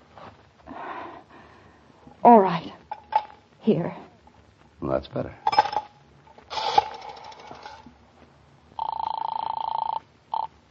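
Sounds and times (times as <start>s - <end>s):
speech: 2.2s - 2.8s, 3.7s - 4.1s, 4.8s - 5.5s
old telephone bell trilling: 8.8s - 10.5s.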